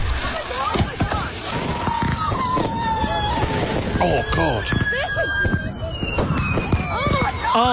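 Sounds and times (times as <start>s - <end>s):
shrill whistling firework rockets: 0.0s - 7.7s
unsecured fireworks exploding with sharp bangs and crackles: 0.0s - 7.7s
rising firework squeals: 1.8s - 7.7s
speech: 4.0s - 4.8s, 7.6s - 7.7s.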